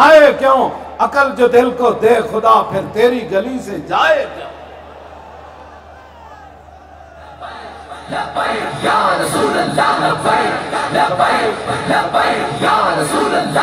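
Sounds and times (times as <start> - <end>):
speech: 0.0 - 4.6, 8.1 - 13.6
large crowd chanting political slogans: 4.4 - 13.6.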